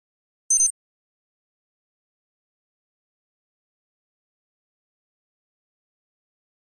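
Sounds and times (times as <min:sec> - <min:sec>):
electronic flash beep: 0:00.5 - 0:00.7.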